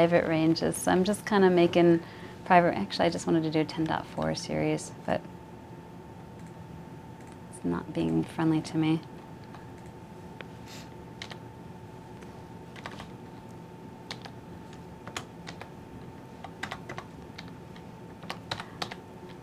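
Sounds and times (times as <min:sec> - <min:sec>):
speech: 0:00.0 - 0:05.4, 0:07.6 - 0:09.1
typing on a computer keyboard: 0:11.2 - 0:11.4, 0:12.8 - 0:13.1, 0:14.1 - 0:14.3, 0:15.0 - 0:15.7, 0:16.4 - 0:17.6, 0:18.2 - 0:19.4.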